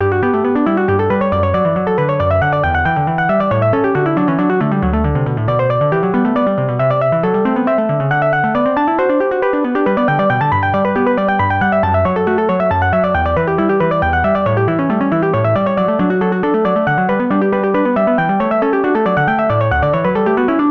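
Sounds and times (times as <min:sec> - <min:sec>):
grand piano: 0:00.0 - 0:20.6.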